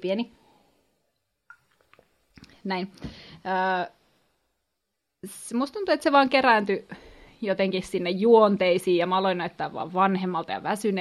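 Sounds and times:
speech: 0:00.0 - 0:00.4, 0:02.6 - 0:04.0, 0:05.2 - 0:11.0
sipping water: 0:01.5 - 0:02.6
soft swallowing: 0:01.5 - 0:02.6
wet mouth clicks: 0:01.5 - 0:02.6.

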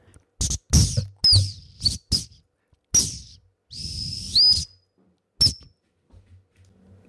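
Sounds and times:
high breathy plastic whistle playing a short tune: 0:00.4 - 0:02.4, 0:03.0 - 0:04.8, 0:05.4 - 0:05.7.

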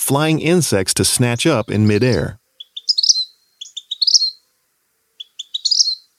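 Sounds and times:
speech: 0:00.0 - 0:02.4
vermilion flycatcher calling in rising chips and trills: 0:01.4 - 0:04.6, 0:05.2 - 0:06.1.

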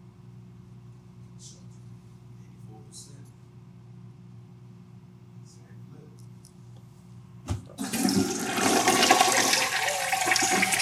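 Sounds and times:
toilet flushing: 0:07.8 - 0:10.8.

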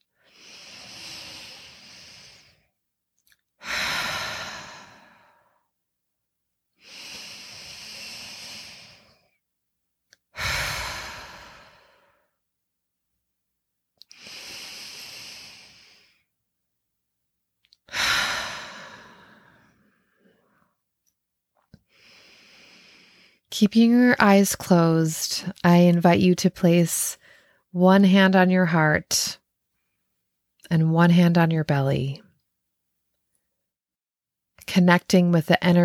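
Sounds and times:
deep breathing in through the nose, out through the mouth: 0:00.2 - 0:02.7, 0:03.6 - 0:05.7, 0:06.8 - 0:09.4, 0:10.4 - 0:12.4, 0:14.1 - 0:16.3, 0:17.9 - 0:20.7, 0:21.9 - 0:23.5
speech: 0:23.6 - 0:29.4, 0:30.7 - 0:32.2, 0:34.7 - 0:35.8.

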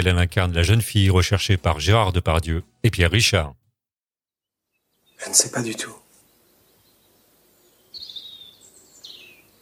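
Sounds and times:
speech: 0:00.0 - 0:03.6, 0:05.2 - 0:06.0
birds singing: 0:04.6 - 0:09.6.

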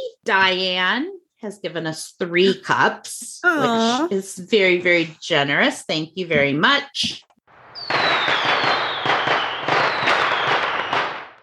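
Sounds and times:
speech: 0:00.2 - 0:07.3
rapid barrage of crackling, popping fireworks bursts: 0:07.6 - 0:11.4
whistling firework rocket streaking upward: 0:07.6 - 0:11.4.

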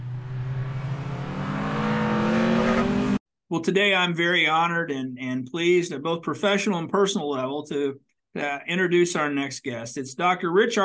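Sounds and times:
race car engines revving: 0:00.0 - 0:03.2
speech: 0:03.5 - 0:10.8.

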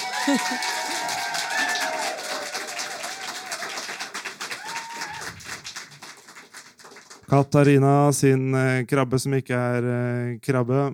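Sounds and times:
laughter: 0:00.0 - 0:02.1
faint voices and whoops from crowd: 0:00.0 - 0:03.9, 0:04.5 - 0:05.6
crowd applauding: 0:00.0 - 0:07.4
speech: 0:00.2 - 0:00.8, 0:07.3 - 0:10.9.

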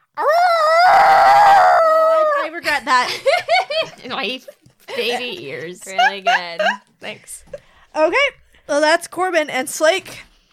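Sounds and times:
person imitating a long pained howl: 0:00.2 - 0:02.4
laughter: 0:02.6 - 0:07.7
speech: 0:02.8 - 0:10.3.

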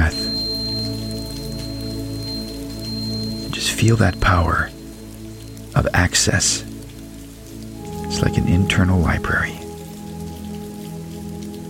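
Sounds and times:
low sustained hum: 0:00.0 - 0:05.6
steady rain pattering down: 0:00.0 - 0:11.6
speech: 0:03.8 - 0:04.7, 0:05.8 - 0:06.7, 0:08.1 - 0:09.6.

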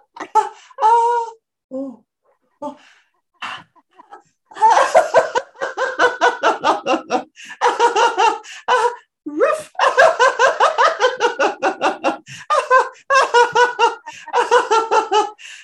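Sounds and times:
loud laughter in rhythmic bursts as a laughter exercise: 0:03.4 - 0:15.4.

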